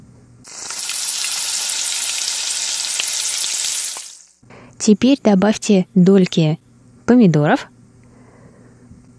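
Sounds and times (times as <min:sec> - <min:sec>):
garlic, shallots and green onions stir-frying with ginger in a wok on highest heat: 0:00.4 - 0:04.4
speech: 0:04.8 - 0:07.7.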